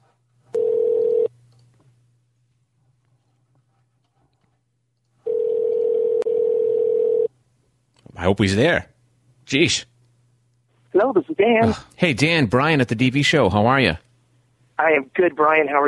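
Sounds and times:
faint hum: 0.0 - 15.8
phone line ringing on the other end: 0.5 - 1.3, 5.2 - 7.3
speech: 8.2 - 8.9, 9.5 - 9.9, 11.0 - 14.0, 14.8 - 15.8.

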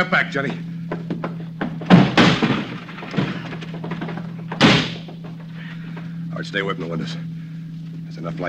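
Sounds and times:
speech: 0.0 - 1.0, 6.4 - 7.3, 8.2 - 8.4
steady low hum: 0.0 - 8.4
rattling knocks and clatter: 0.9 - 6.1
locked wooden door being kicked in: 1.6 - 5.5.

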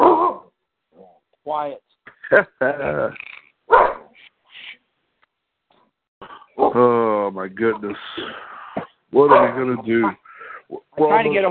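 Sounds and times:
dog barking: 0.0 - 0.5, 3.7 - 4.2, 9.2 - 10.2
speech: 1.4 - 3.4, 6.6 - 8.5, 9.1 - 11.5.

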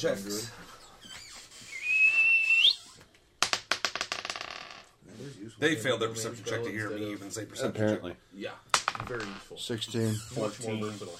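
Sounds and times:
speech: 0.0 - 0.6, 5.2 - 11.1
person whistling during a tabletop game session: 1.7 - 2.9.

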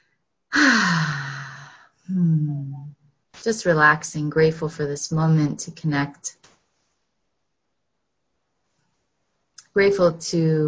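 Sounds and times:
deep breath during a guided relaxation: 0.0 - 2.0
speech: 3.4 - 6.5, 9.8 - 10.6.

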